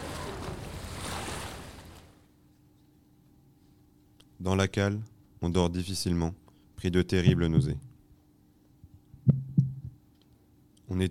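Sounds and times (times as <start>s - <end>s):
rough sea waves near a moored liner in the port of Marseille: 0.0s - 2.2s
speech: 4.4s - 7.9s.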